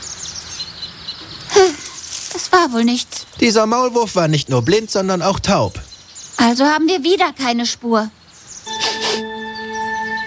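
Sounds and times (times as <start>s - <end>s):
faint hissy background: 0.0s - 10.2s
speech: 2.5s - 8.2s
single short loud bird call: 8.6s - 10.2s.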